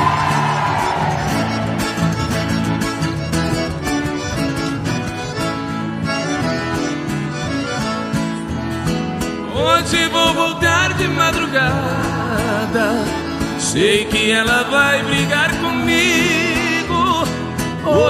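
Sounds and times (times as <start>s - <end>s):
crowd of women shouting and cheering: 0.0s - 1.8s
accordion player: 0.0s - 18.0s
live music with a driving beat: 0.0s - 18.0s
speech: 11.3s - 16.4s.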